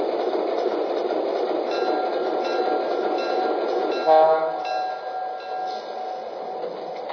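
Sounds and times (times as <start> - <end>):
passenger train arriving at station: 0.0 - 7.1
tonal horn-like blast of passenger train: 4.0 - 4.7.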